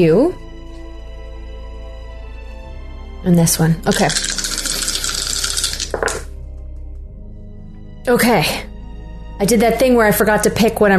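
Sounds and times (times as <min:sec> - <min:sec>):
speech: 0:00.0 - 0:00.4, 0:03.2 - 0:04.4, 0:08.1 - 0:08.7, 0:09.4 - 0:10.9
dice rattling: 0:03.9 - 0:06.3.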